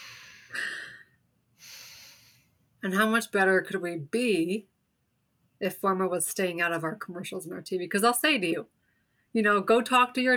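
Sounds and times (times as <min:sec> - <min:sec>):
big deep breath: 0:00.0 - 0:02.6
speech: 0:02.8 - 0:04.7, 0:05.6 - 0:10.3.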